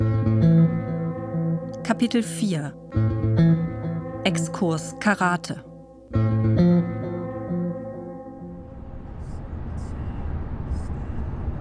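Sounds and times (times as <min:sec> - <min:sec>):
short sustained musical chord: 0:00.0 - 0:09.3
speech: 0:01.9 - 0:03.5, 0:04.2 - 0:06.7.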